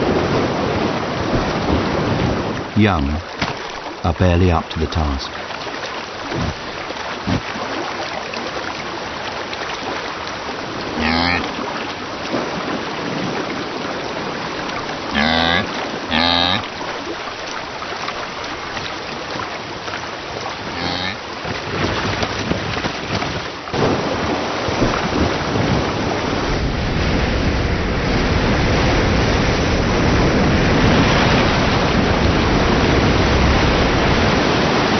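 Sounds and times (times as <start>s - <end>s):
river in heavy flood flow roaring: 0.0s - 34.9s
speech: 2.8s - 3.3s, 4.0s - 5.5s.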